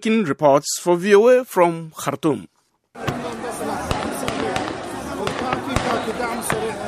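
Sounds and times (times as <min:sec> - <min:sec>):
speech: 0:00.0 - 0:03.2
constant roar of crowd noise: 0:02.9 - 0:06.8
gunshots fired by armed men: 0:03.0 - 0:06.8
indistinct voices: 0:03.0 - 0:06.8.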